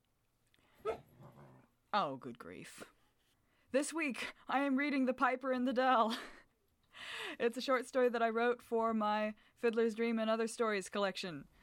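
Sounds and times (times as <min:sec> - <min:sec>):
dog whimpering: 0:00.8 - 0:01.3
speech: 0:02.0 - 0:03.0, 0:03.7 - 0:06.4, 0:07.0 - 0:11.5.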